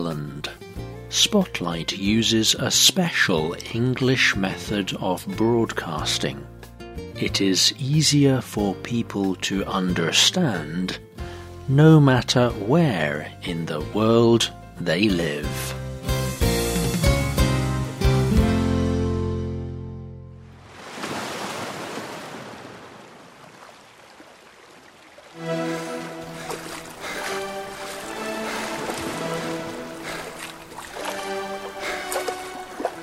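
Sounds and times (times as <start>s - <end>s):
speech: 0.0s - 6.5s, 7.2s - 15.8s
music: 0.0s - 20.5s, 25.4s - 33.0s
sea waves: 20.4s - 33.0s.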